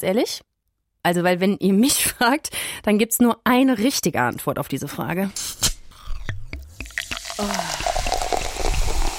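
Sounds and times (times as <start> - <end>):
speech: 0.0 - 5.7, 7.4 - 7.8
sparkling water fizzing: 6.8 - 9.1.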